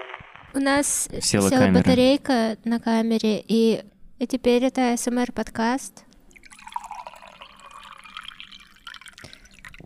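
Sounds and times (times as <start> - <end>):
speech: 0.6 - 6.1
water trickling and pouring: 6.3 - 9.8.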